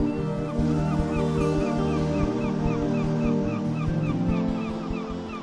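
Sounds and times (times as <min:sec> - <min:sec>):
birds honking and chirping over water at dawn: 0:00.1 - 0:05.3.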